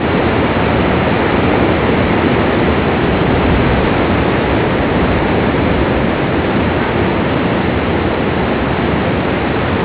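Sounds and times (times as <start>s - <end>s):
waterfall: 0.0s - 9.8s.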